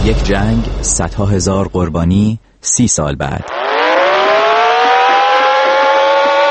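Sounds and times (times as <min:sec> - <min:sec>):
speech: 0:00.1 - 0:03.7
air raid warning siren wailing: 0:03.4 - 0:06.4.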